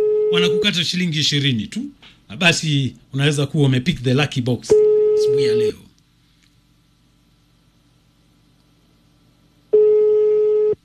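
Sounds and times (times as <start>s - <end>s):
telephone tone: 0.0s - 0.7s, 4.7s - 5.7s, 9.7s - 10.8s
speech: 0.3s - 5.8s.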